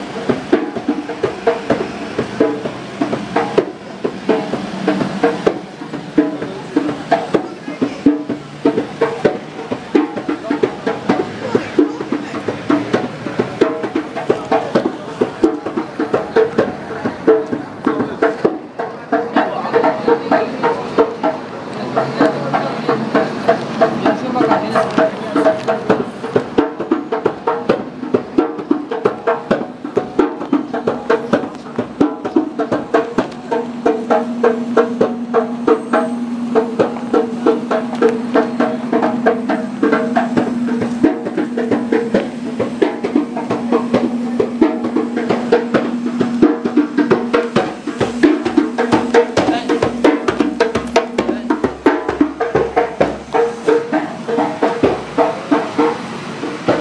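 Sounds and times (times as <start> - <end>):
busker playing djembe outside tube station on Oxford Street: 0.0 - 56.7.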